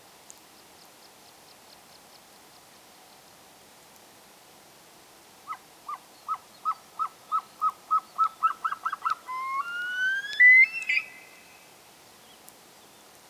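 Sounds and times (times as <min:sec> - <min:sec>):
Himalayan snowcock Tetraogallus himalayensis clucking and whistling: 0:06.7 - 0:11.5.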